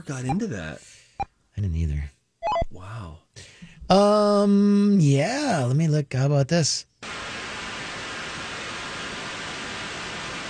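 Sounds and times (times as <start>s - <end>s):
speech: 0.0s - 6.9s
TV static white noise hiss: 7.0s - 10.4s.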